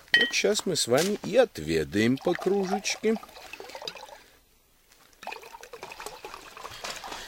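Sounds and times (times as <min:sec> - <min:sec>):
speech: 0:00.2 - 0:03.6
liquid pouring into a glass: 0:02.0 - 0:04.3, 0:05.2 - 0:07.1.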